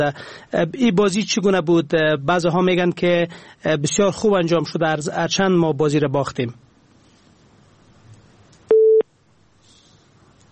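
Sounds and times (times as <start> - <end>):
speech: 0.0 - 6.6
electronic telephone busy tone after a call-in line disconnects: 8.7 - 9.0.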